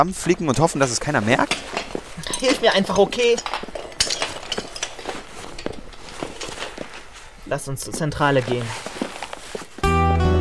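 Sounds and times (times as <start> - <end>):
speech: 0.0 - 1.8, 2.4 - 3.6, 7.5 - 9.0
broken glassy shards clinking as they are gathered: 1.5 - 7.1.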